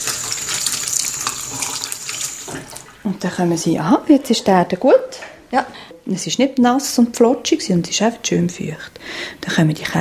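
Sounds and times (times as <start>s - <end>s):
tap water running over seeds in a yogurt cup: 0.0s - 3.0s
speech: 3.1s - 9.9s.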